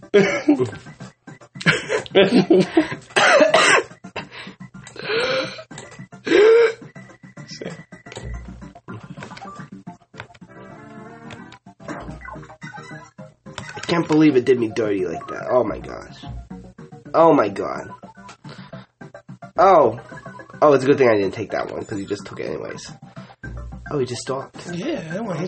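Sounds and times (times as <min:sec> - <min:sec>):
speech: 0:00.1 - 0:01.0, 0:02.1 - 0:03.0, 0:14.0 - 0:16.4, 0:17.2 - 0:18.0, 0:19.6 - 0:23.0, 0:23.9 - 0:25.4
person coughing: 0:03.2 - 0:03.9, 0:06.3 - 0:06.8.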